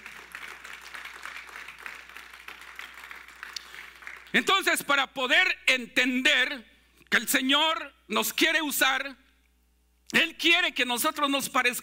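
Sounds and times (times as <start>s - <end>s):
audience applauding: 0.0s - 4.4s
speech: 4.3s - 9.2s, 10.1s - 11.8s.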